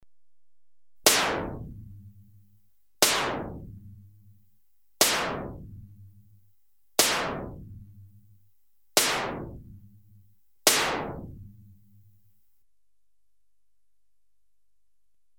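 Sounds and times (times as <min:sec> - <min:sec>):
electronically generated compressed gas gun single shots: 0:01.0 - 0:01.6, 0:05.0 - 0:05.5, 0:07.0 - 0:07.5, 0:09.0 - 0:09.6, 0:10.7 - 0:11.3.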